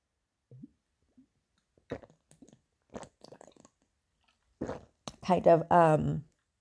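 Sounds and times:
person sipping and swallowing water: 1.8s - 5.2s
speech: 5.3s - 6.3s.

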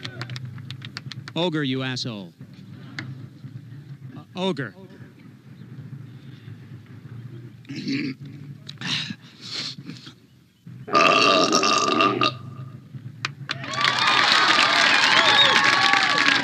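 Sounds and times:
speech: 1.4s - 2.4s, 4.4s - 4.8s, 7.7s - 8.3s
long loud rumbling belch at a belching contest: 10.9s - 12.6s
crowd cheering and shouting: 13.5s - 16.4s.

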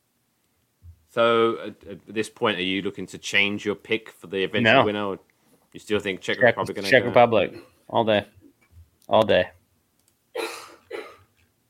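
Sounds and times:
speech: 1.2s - 8.4s, 9.1s - 9.6s
person sneezing: 10.4s - 11.3s.

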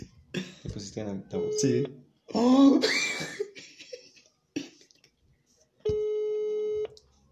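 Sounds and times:
speech: 0.9s - 3.4s
laughter: 2.8s - 5.0s
telephone buzzing ring tone on a call ringing out: 5.9s - 6.9s.

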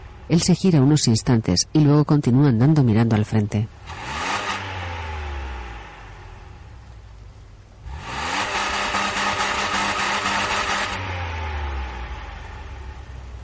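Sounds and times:
car engine driving slowly alongside: 0.0s - 1.0s, 3.6s - 13.4s
speech: 0.3s - 4.1s
steady broadband rush of tyres: 3.8s - 6.8s, 7.8s - 13.4s.

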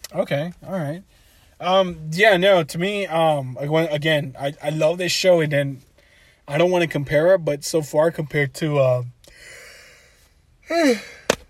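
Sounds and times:
speech: 0.1s - 5.9s, 6.5s - 9.6s, 10.7s - 11.2s
person yawning with a voiced groan: 10.7s - 11.3s.

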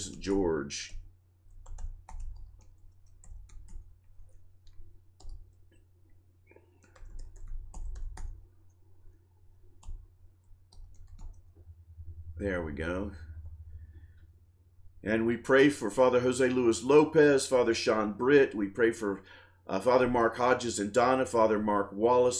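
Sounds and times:
speech: 0.0s - 1.0s, 12.4s - 13.2s, 15.0s - 22.3s
steady low hum: 0.0s - 22.3s
typing on a computer keyboard: 0.9s - 5.9s, 6.5s - 8.7s, 9.7s - 11.6s.

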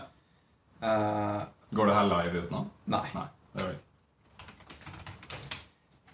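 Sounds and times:
speech: 0.8s - 3.8s
typing on a computer keyboard: 4.3s - 5.8s.

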